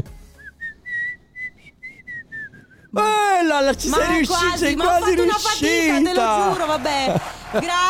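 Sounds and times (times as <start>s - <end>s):
person whistling short wavering breathy notes: 0.2s - 2.9s
speech: 2.9s - 7.8s
laughter: 5.5s - 7.8s.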